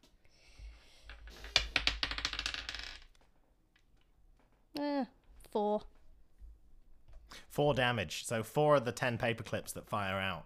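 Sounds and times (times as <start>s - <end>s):
percentile dice rolling on a hard tabletop: 0.8s - 4.5s
speech: 4.8s - 5.9s, 7.6s - 10.4s.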